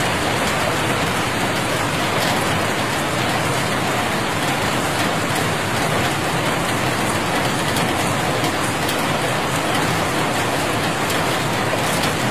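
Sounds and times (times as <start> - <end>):
fine patter of raindrops striking a surface: 0.0 - 12.3.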